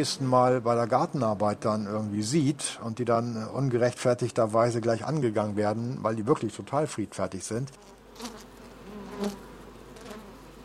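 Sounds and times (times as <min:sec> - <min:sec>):
speech: 0:00.0 - 0:08.5, 0:09.2 - 0:09.5
Saxon wasps buzzing at a small nest: 0:07.8 - 0:10.6.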